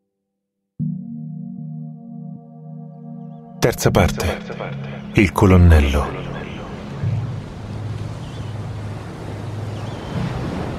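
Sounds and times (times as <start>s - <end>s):
speech: 3.6s - 6.3s
ocean waves breaking on shore: 4.2s - 10.7s.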